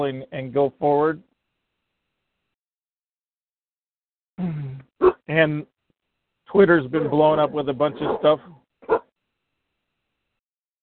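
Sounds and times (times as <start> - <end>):
speech: 0.0 - 1.3, 4.4 - 5.7, 6.5 - 9.1
dog barking: 7.9 - 9.1.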